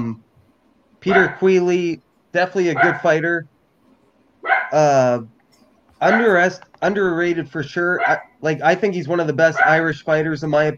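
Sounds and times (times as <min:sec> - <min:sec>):
speech: 0:01.0 - 0:03.5, 0:04.4 - 0:05.4, 0:06.0 - 0:10.7
dog barking: 0:01.1 - 0:01.4, 0:02.8 - 0:03.1, 0:04.4 - 0:04.8, 0:06.0 - 0:06.4, 0:08.0 - 0:08.4, 0:09.6 - 0:09.8
dog yowling: 0:02.8 - 0:03.1, 0:04.4 - 0:04.8, 0:08.0 - 0:08.4.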